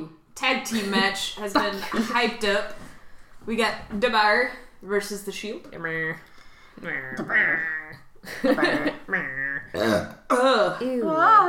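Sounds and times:
speech: 0:00.0 - 0:11.4
loud drawn-out voiced belches with wavering pitch: 0:06.8 - 0:10.4
laughter: 0:08.2 - 0:09.6.

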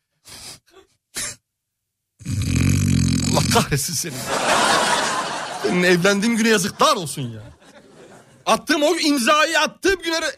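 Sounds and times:
loud snoring: 0:02.2 - 0:03.6
speech: 0:03.6 - 0:04.6, 0:05.6 - 0:07.6, 0:08.5 - 0:10.3
laughter: 0:04.0 - 0:08.5.

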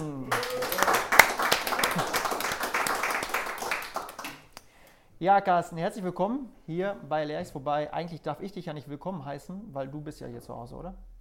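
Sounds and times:
audience applauding: 0:00.0 - 0:04.6
speech: 0:05.2 - 0:11.1.

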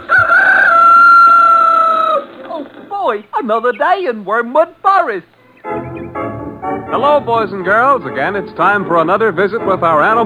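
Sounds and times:
rooster crowing: 0:00.0 - 0:03.0
speech: 0:03.1 - 0:05.8, 0:06.9 - 0:10.2.

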